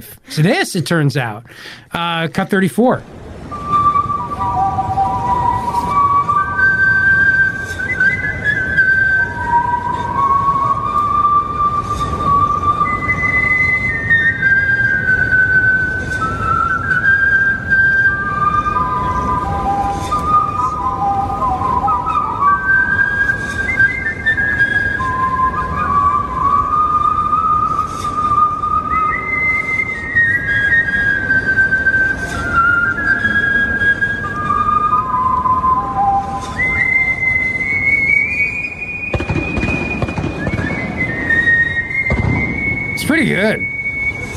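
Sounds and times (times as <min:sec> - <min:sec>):
speech: 0:00.0 - 0:03.2
steady low noise: 0:00.0 - 0:44.3
person whistling the national anthem at a baseball game: 0:03.5 - 0:44.3.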